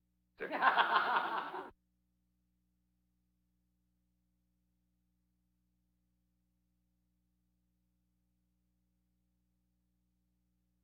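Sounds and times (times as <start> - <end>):
laugh track audience laughter: 0.4 - 1.7.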